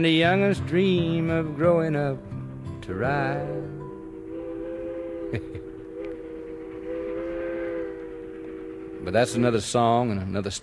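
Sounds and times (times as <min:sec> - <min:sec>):
speech: 0:00.0 - 0:03.8, 0:05.3 - 0:05.7, 0:09.0 - 0:10.6
railway rumbling: 0:00.0 - 0:10.6
train whistle blowing: 0:03.0 - 0:10.3.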